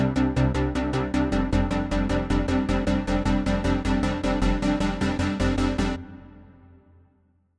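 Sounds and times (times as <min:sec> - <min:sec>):
future bass synth chord pluck: 0:00.2 - 0:06.9.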